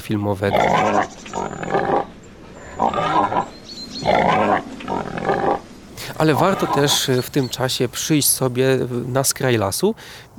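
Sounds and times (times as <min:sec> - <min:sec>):
speech: 0:00.1 - 0:02.0, 0:02.8 - 0:04.5, 0:06.2 - 0:10.3
wild boars snorting, squealing and grunting in loud harsh bursts: 0:00.5 - 0:07.8.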